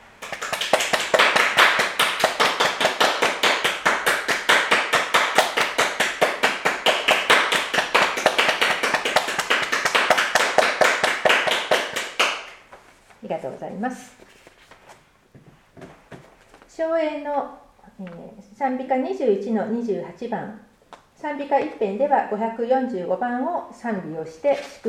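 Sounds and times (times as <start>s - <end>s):
audience applauding: 0.2s - 12.6s
speech: 13.7s - 14.4s, 16.8s - 20.6s, 21.2s - 24.8s.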